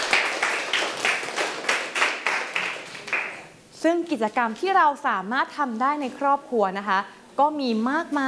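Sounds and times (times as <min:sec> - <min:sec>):
classroom of students clapping for a classmate: 0:00.0 - 0:03.5
speech: 0:03.8 - 0:08.2.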